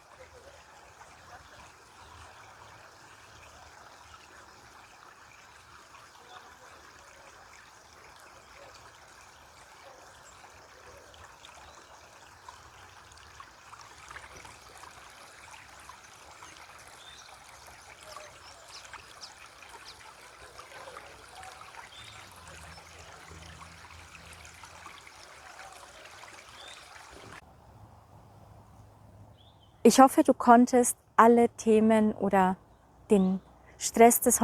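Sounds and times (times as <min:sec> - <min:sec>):
brook flowing over stones: 0:00.0 - 0:27.4
speech: 0:29.8 - 0:34.4.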